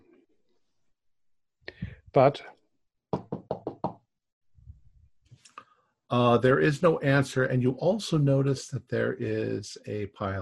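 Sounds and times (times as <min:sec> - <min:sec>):
speech: 0:02.1 - 0:02.6, 0:06.1 - 0:10.4
firm loud knocks on a door: 0:03.1 - 0:04.0.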